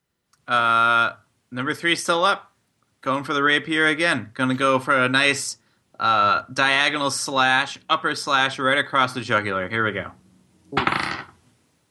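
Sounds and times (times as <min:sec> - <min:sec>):
speech: 0:00.5 - 0:11.0
dice clattering across a hard tabletop: 0:10.8 - 0:11.4.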